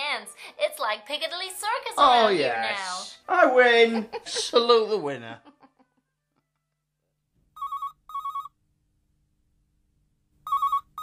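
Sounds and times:
speech: 0.2 - 5.5
electronic telephone ringing before answering machine picks up: 7.6 - 8.6, 10.4 - 11.0.

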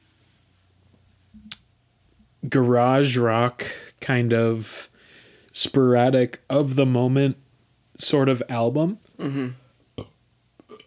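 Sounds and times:
speech: 2.4 - 4.9, 5.6 - 7.4, 8.0 - 10.1
burp: 9.2 - 10.8.

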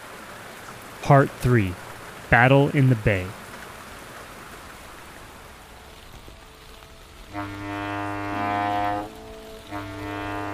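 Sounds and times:
speech: 1.0 - 3.4
foghorn blasts: 6.3 - 10.5.

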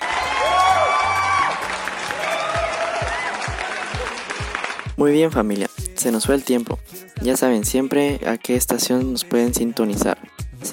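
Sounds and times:
cheering and whoops: 0.0 - 4.4
applause: 0.0 - 5.0
speech: 5.0 - 10.7.

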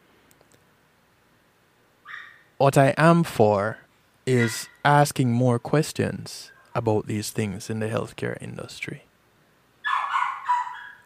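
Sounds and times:
dog barking: 2.0 - 2.5, 4.3 - 4.7, 9.8 - 11.0
speech: 2.6 - 9.1.

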